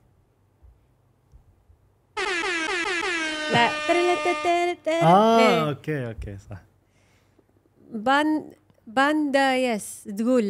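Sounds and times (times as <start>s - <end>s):
air horn blast: 2.2s - 4.8s
speech: 3.5s - 6.7s, 7.9s - 10.4s.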